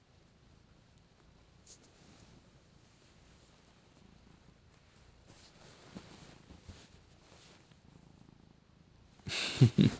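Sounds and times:
cat purring with a low rumbling pulse: 0.0s - 9.9s
rustling and bumping right against the microphone: 4.8s - 7.7s.

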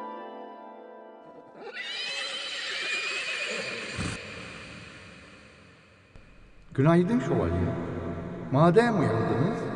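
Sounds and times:
horse whinnying and neighing: 1.5s - 4.3s
speech: 6.7s - 7.9s, 8.5s - 9.7s.

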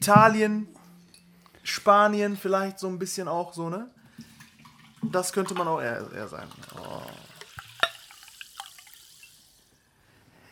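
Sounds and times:
speech: 0.0s - 0.8s, 1.7s - 4.0s, 5.0s - 7.2s
water being poured: 4.0s - 9.7s
splashy drips and clinks: 4.1s - 5.8s, 6.4s - 9.5s.

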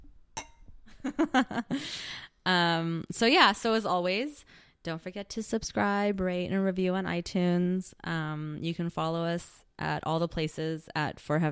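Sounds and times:
glasses clinking in a toast: 0.4s - 0.8s
speech: 1.2s - 11.4s.

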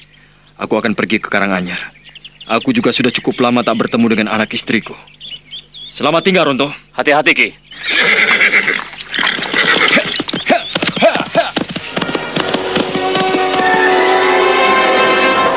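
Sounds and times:
speech: 0.6s - 5.2s, 5.9s - 8.3s
horse neighing: 7.7s - 14.7s
rapid hoofbeats of a horse galloping off: 8.3s - 15.5s
steady rushing sound: 10.7s - 15.5s.

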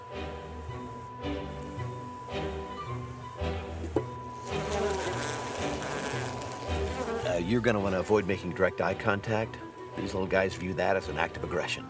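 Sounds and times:
bees buzzing in a hive during colony inspection: 0.0s - 8.2s
speech: 7.4s - 11.8s.

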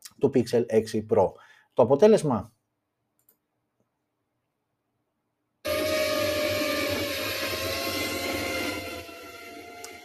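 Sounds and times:
speech: 0.2s - 2.6s
drone propellers buzzing on a drone carrying a Pixel 6 Pro phone: 5.7s - 10.0s.

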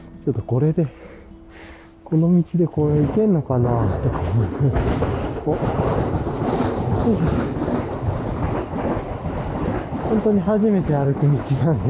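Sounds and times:
speech: 0.2s - 6.0s, 7.1s - 7.6s, 10.1s - 11.8s
train wheels clacking over rail joints: 2.7s - 11.8s
train rolling slowly past: 3.8s - 11.8s.

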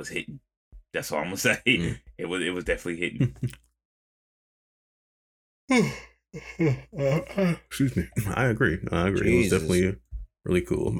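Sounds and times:
speech: 0.0s - 3.6s, 5.7s - 10.9s
person yawning: 5.7s - 7.7s.

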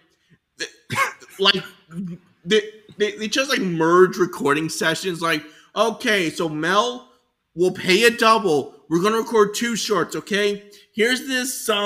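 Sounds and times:
person coughing for a cartoon recording session: 0.6s - 2.2s
speech: 1.4s - 11.8s.

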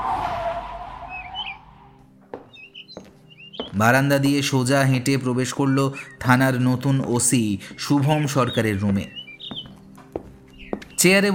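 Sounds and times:
fast car braking to a stop at a police station: 0.0s - 2.0s
birds chirping: 0.0s - 11.3s
speech: 3.7s - 9.2s, 11.0s - 11.3s.

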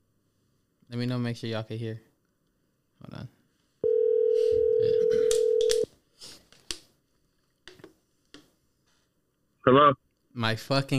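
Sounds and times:
speech: 0.9s - 2.1s, 9.7s - 10.9s
loud steady telephone dial tone: 3.8s - 5.8s.

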